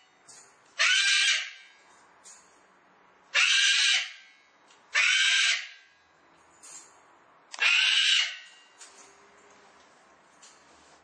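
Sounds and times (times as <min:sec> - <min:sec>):
cockatoo giving harsh grating screeches: 0:00.8 - 0:01.6, 0:03.3 - 0:04.2, 0:04.9 - 0:05.8, 0:07.6 - 0:08.5.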